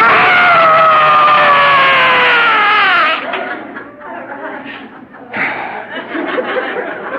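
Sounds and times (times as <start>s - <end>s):
person screaming in a car after leaving a family dinner: 0.0s - 3.3s
laughter: 1.0s - 7.1s.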